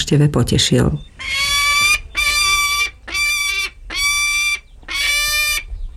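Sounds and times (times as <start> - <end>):
speech: 0.1 - 1.4
captive-bred peregrine falcon harsh begging calls for meat: 1.0 - 5.7.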